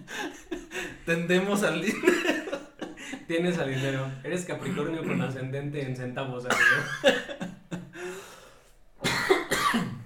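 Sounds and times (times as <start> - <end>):
speech: 1.1 - 2.3, 3.3 - 7.4
laughter: 1.8 - 4.2
harsh breathy coughs: 4.6 - 5.4, 6.5 - 7.3, 9.0 - 10.0.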